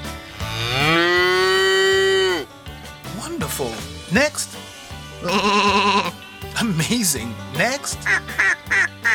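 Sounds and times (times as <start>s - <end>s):
cow mooing: 0.3s - 2.5s
speech: 4.1s - 4.6s, 5.2s - 5.7s, 6.8s - 9.0s.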